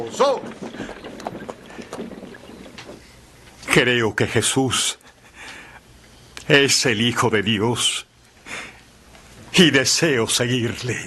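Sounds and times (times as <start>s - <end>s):
speech: 0.0s - 0.8s, 3.7s - 5.0s, 6.5s - 8.1s, 9.5s - 11.0s
horses' hooves clopping and slowing to a halt: 0.0s - 3.6s.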